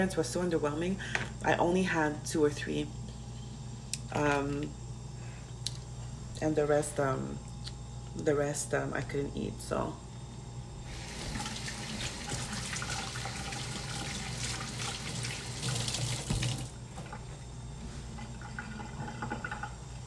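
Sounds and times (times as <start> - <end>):
speech: 0.0 - 3.0, 4.1 - 4.8, 6.4 - 7.5, 8.2 - 10.0
water running from a tap as oily fingers are rinsed: 10.9 - 17.1.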